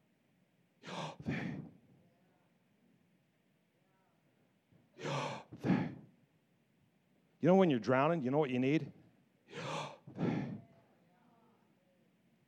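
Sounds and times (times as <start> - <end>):
deep breathing in and out: 0.8 - 1.8, 5.0 - 6.0, 9.5 - 10.7
speech: 7.4 - 9.0.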